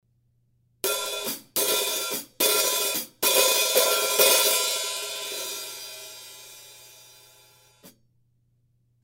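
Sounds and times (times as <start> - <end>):
hi-hat cymbal pattern: 0.8 - 7.9.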